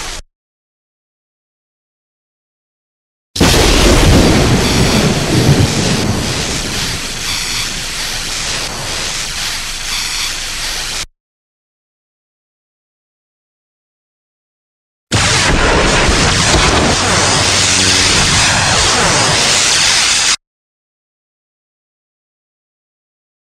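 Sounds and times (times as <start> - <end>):
sci-fi force power sound effects: 3.4 - 11.1, 15.1 - 20.4.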